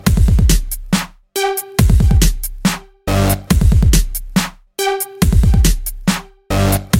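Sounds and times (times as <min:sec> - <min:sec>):
electronic dance music: 0:00.0 - 0:06.9.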